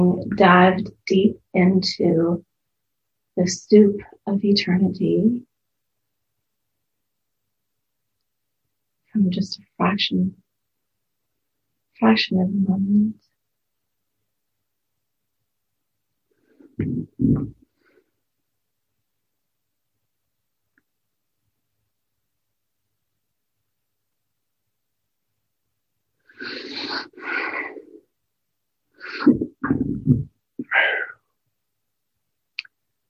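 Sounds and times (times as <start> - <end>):
speech: 0.0 - 2.5, 3.4 - 5.5, 9.2 - 10.4, 12.0 - 13.2, 16.8 - 17.6, 29.0 - 31.1
deep throaty gurgling belches: 16.8 - 17.6.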